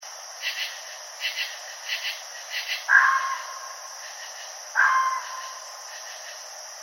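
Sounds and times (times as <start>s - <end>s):
red fox harsh harmonic cries: 2.9s - 3.8s, 4.8s - 5.6s.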